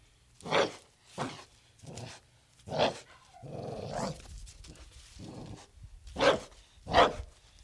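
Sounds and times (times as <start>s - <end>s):
pit bull barking: 0.5s - 1.4s, 6.2s - 7.2s.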